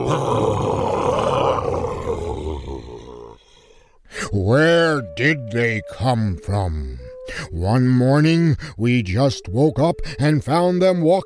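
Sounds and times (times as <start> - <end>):
bear growling: 0.0 - 3.7
speech: 0.1 - 0.4, 5.2 - 11.2.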